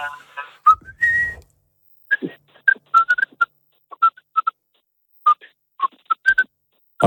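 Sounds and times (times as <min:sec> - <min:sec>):
speech: 0:00.0 - 0:00.4
person whistling a short choppy tune: 0:00.6 - 0:01.5, 0:02.1 - 0:04.5.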